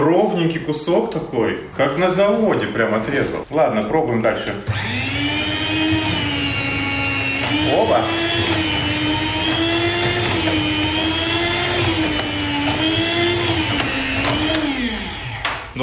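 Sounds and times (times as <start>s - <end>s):
speech: 0.3s - 5.1s, 7.5s - 8.9s
electric meat slicer whirring while cutting sausage: 4.7s - 15.6s.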